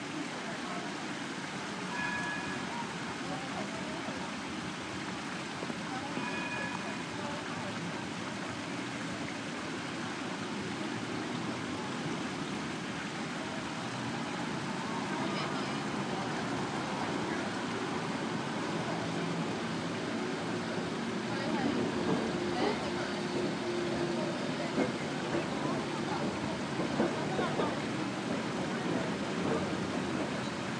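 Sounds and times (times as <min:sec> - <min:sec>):
market square ambience: 0:00.0 - 0:30.7.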